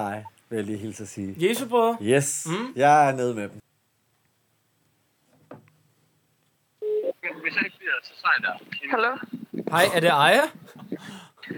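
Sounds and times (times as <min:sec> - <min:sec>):
speech: 0:00.0 - 0:03.6, 0:07.5 - 0:11.5
telephone dialing and ringing tone: 0:06.8 - 0:07.7
voice speaking over the telephone line: 0:07.0 - 0:10.1.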